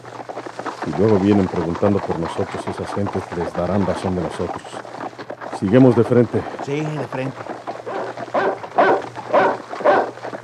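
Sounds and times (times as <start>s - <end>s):
speech: 0.9s - 5.0s, 5.6s - 7.7s
dog barking: 7.9s - 10.4s.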